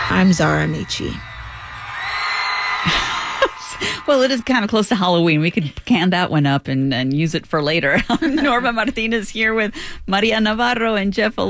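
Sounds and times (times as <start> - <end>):
group of people yelling together: 0.0 - 4.8
speech: 0.1 - 1.3, 4.1 - 11.4
laughter: 2.8 - 4.1, 8.0 - 8.9.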